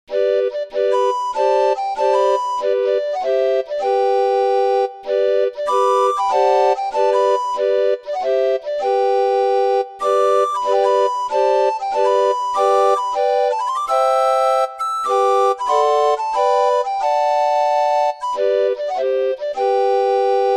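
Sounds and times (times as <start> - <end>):
barrel organ playing: 0.1 - 20.5.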